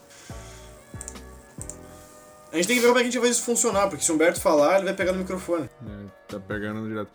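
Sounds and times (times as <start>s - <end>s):
keyboard typing: 0.9s - 1.9s
mouse clicking: 0.9s - 1.9s
speech: 2.5s - 7.1s.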